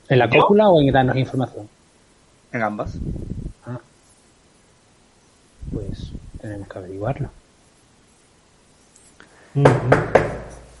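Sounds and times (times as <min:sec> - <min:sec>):
speech: 0:00.1 - 0:01.8, 0:02.5 - 0:03.9, 0:05.7 - 0:07.4, 0:09.5 - 0:10.4
knocking on a door: 0:09.6 - 0:10.5.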